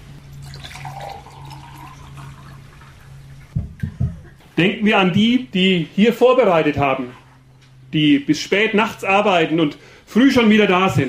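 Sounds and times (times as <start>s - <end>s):
fresh water pouring from a jug into a glass: 0.4s - 3.2s
speech: 4.6s - 7.2s, 7.9s - 11.0s.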